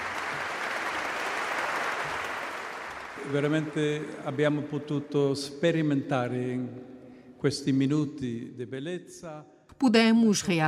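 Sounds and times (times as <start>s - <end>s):
audience applause for the artists after a performance: 0.0s - 4.4s
speech: 3.3s - 10.6s.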